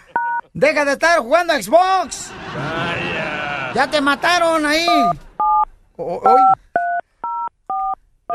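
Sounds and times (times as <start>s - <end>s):
laughter: 0.0s - 0.5s, 2.0s - 5.4s
touch-tone telephone keypad dialing beeps: 0.1s - 0.4s, 4.9s - 5.7s, 6.3s - 8.3s
speech: 0.6s - 3.0s, 3.7s - 5.2s, 6.0s - 6.6s.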